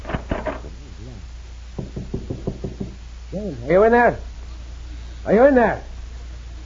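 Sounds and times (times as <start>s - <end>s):
faint murmur: 0.4s - 1.7s, 3.2s - 6.6s
knocking on a wooden door: 1.8s - 3.0s
speech: 3.4s - 4.3s, 5.2s - 5.9s.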